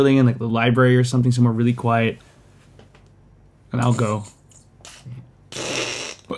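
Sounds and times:
speech: 0.0s - 2.3s, 3.7s - 4.4s
mouth-made imitation of a fart: 4.8s - 6.3s.

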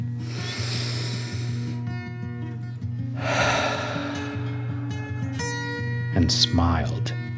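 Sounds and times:
soft steady music for guided relaxation: 0.0s - 7.3s
deep breath in and out: 0.1s - 1.8s, 3.2s - 5.3s
speech: 6.2s - 7.1s.

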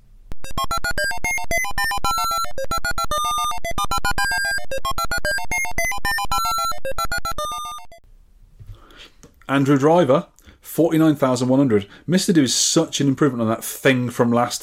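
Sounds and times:
arcade high score entry chiptune music: 0.4s - 8.0s
speech: 9.5s - 14.6s.

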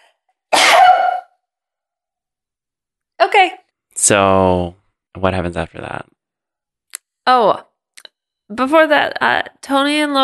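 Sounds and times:
sneeze: 0.5s - 1.3s
speech: 3.4s - 6.2s, 7.2s - 7.7s, 8.5s - 10.2s.

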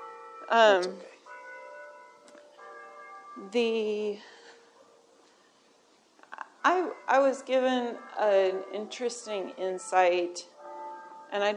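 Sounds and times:
church bell ringing: 0.0s - 5.5s, 6.6s - 11.5s
speech: 0.5s - 1.1s, 3.4s - 4.4s, 6.6s - 10.5s, 11.3s - 11.5s.

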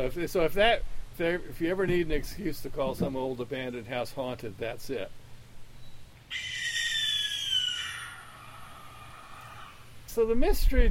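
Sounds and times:
speech: 0.0s - 5.2s, 6.3s - 6.5s, 10.1s - 10.8s
barn owl screeching: 6.3s - 10.0s.

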